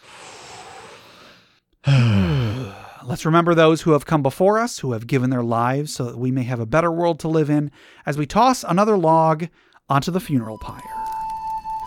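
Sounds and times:
deep slow breath: 0:00.0 - 0:03.1, 0:07.7 - 0:08.1, 0:09.5 - 0:09.8
speech: 0:03.1 - 0:11.0.

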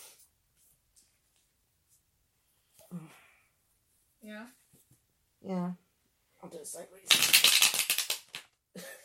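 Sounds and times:
loud riffle shuffle of a card deck: 0:07.1 - 0:08.5.

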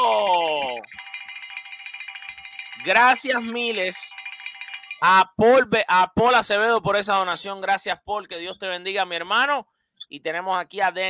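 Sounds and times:
hand bell ringing: 0:00.0 - 0:05.2
speech: 0:02.8 - 0:04.1, 0:05.0 - 0:11.0.

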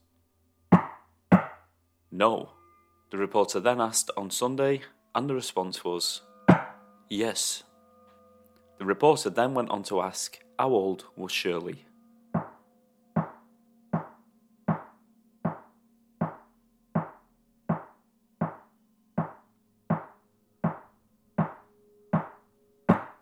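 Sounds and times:
sharp knocks: 0:00.7 - 0:01.6, 0:06.5 - 0:06.8, 0:12.4 - 0:12.6, 0:13.2 - 0:13.4, 0:14.0 - 0:23.2
speech: 0:02.2 - 0:06.3, 0:07.1 - 0:07.7, 0:08.8 - 0:11.9.

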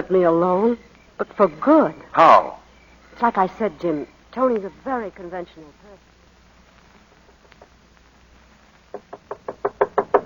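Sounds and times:
speech: 0:00.1 - 0:02.6, 0:03.2 - 0:06.1
knocking on a door: 0:08.9 - 0:10.2.

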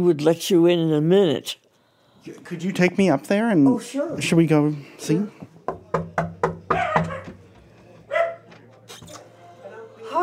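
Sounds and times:
speech: 0:00.0 - 0:01.6, 0:02.2 - 0:06.3
small dog barking in an apartment: 0:06.7 - 0:07.4, 0:08.1 - 0:08.5.

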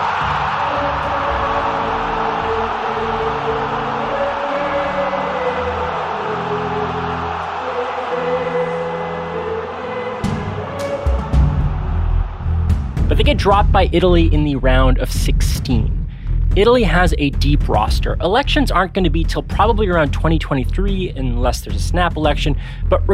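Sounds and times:
large crowd roaring and cheering: 0:00.0 - 0:14.3
speech: 0:13.3 - 0:16.0, 0:16.6 - 0:23.1.

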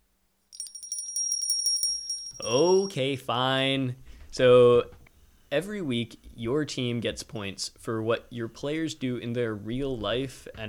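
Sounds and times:
small high-pitched bell ringing: 0:00.6 - 0:03.0
speech: 0:02.4 - 0:10.6.

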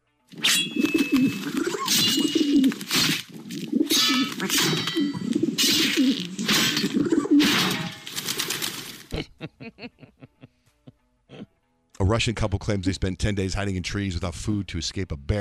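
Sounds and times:
clanging and ringing metallic hits: 0:00.4 - 0:03.1, 0:03.8 - 0:08.3
pigeons cooing agitatedly: 0:00.7 - 0:07.6
laughter: 0:09.1 - 0:11.0
speech: 0:12.1 - 0:15.3.

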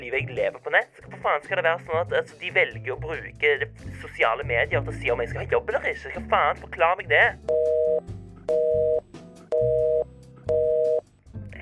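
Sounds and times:
speech: 0:00.0 - 0:08.6
telephone ringing tone over a line: 0:07.5 - 0:11.0.

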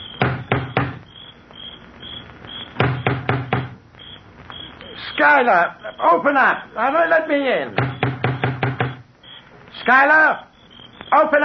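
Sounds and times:
crickets chirping: 0:00.0 - 0:11.4
huge knocker striking the front door of a crumbling mansion: 0:00.2 - 0:01.0, 0:02.8 - 0:03.8, 0:07.8 - 0:09.0
speech: 0:05.2 - 0:07.9, 0:09.8 - 0:10.5, 0:11.1 - 0:11.4.

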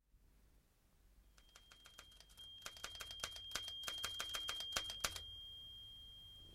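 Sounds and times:
typewriter clacking as a letter is copied out: 0:01.4 - 0:05.2.

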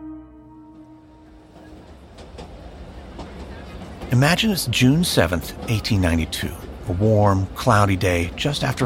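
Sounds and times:
humming drone: 0:00.0 - 0:01.9
train rumbling on tracks: 0:00.6 - 0:08.8
wheels clacking over rail joints: 0:01.4 - 0:08.8
speech: 0:04.1 - 0:08.8.

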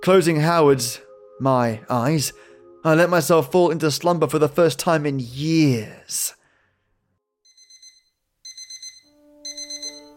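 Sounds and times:
speech: 0:00.0 - 0:06.4
electronic alarm clock beeping: 0:07.5 - 0:10.1.

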